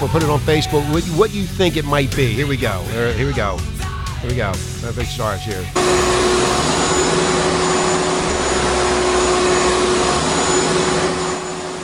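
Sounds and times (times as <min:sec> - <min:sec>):
speech: 0:00.1 - 0:07.0
vacuum cleaner running: 0:05.8 - 0:11.8.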